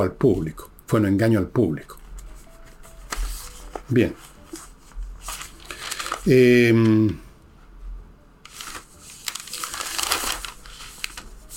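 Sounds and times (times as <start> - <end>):
speech: 0.0 - 2.0, 3.9 - 4.3, 6.2 - 7.2
sheet of paper being handled: 2.1 - 7.0, 8.4 - 11.5.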